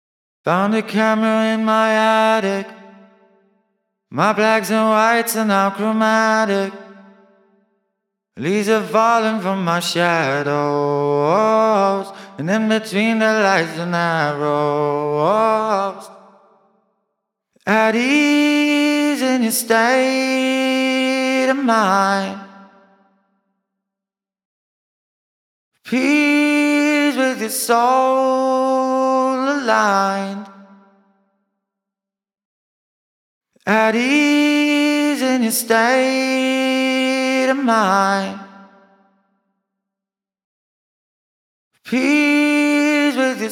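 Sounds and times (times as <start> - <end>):
voice with reverb: 0.5 - 3.2, 4.1 - 7.3, 8.4 - 16.4, 17.7 - 22.8, 25.9 - 30.8, 33.7 - 38.9, 41.9 - 43.4.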